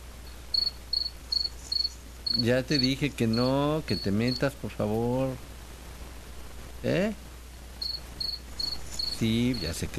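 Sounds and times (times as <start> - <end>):
cricket chirping: 0.2 - 4.5, 7.8 - 9.9
speech: 2.3 - 5.5, 6.8 - 7.2, 9.2 - 9.9.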